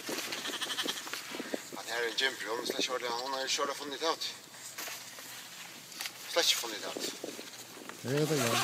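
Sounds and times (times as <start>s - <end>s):
flock of sheep bleating: 0.3s - 1.2s
speech: 2.0s - 4.4s, 6.4s - 7.3s, 8.0s - 8.6s.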